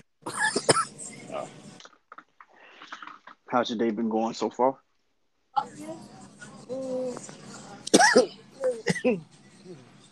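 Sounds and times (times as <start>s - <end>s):
person coughing with raspy bursts: 0.2s - 1.0s, 7.8s - 9.2s
speech: 3.5s - 4.8s, 9.0s - 9.4s
low murmured vocal sounds: 5.6s - 10.1s.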